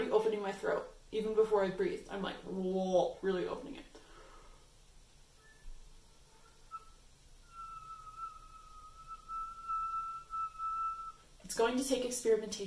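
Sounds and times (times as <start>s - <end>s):
speech: 0.4s - 3.9s, 11.5s - 12.6s
thin airy flute whistle tone on note A: 5.4s - 11.3s.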